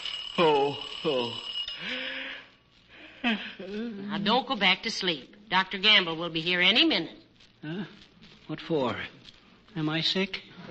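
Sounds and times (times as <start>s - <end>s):
alarm clock ringing: 0.0s - 2.6s
speech: 0.4s - 2.0s, 3.3s - 10.7s.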